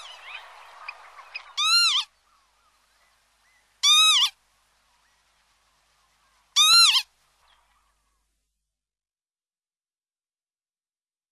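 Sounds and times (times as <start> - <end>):
northern lapwing wheezy wavering calls: 0.0 - 2.1, 3.8 - 4.4, 6.6 - 7.1.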